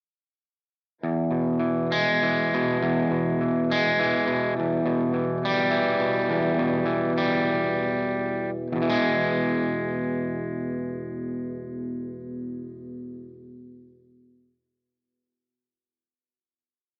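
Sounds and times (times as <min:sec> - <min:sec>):
simulated 4x12 guitar speaker cabinet: 0:01.0 - 0:14.0.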